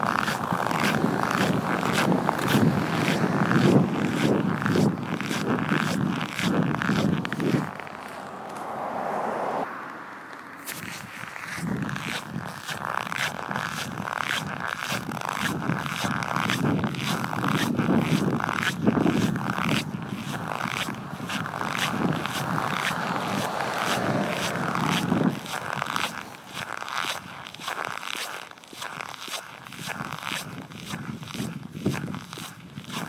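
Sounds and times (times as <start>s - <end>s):
snow crunching: 0.0s - 9.4s, 10.6s - 33.0s.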